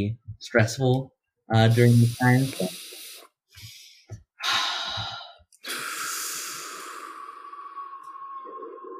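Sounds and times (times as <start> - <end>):
speech: 0.0 - 2.8
deep breaths during a relaxation exercise: 1.7 - 8.9.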